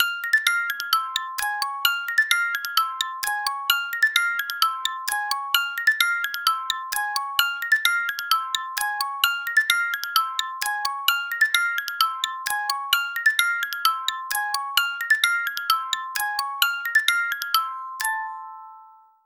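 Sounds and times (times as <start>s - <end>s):
Chinese frog music box: 0.0s - 19.2s.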